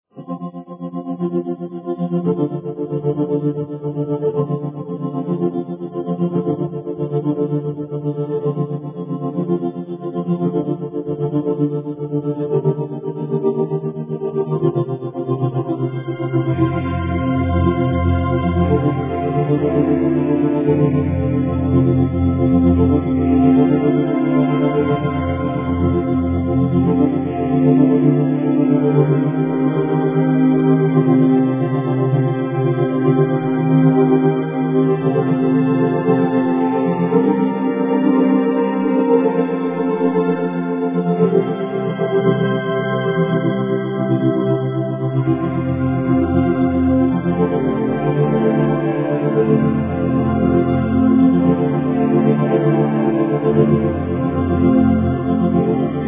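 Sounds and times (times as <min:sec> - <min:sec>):
heavenly ambient music: 0:00.2 - 0:56.0.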